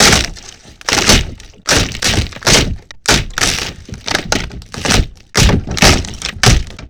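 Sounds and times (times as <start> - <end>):
wood destruction: 0.0 - 6.8.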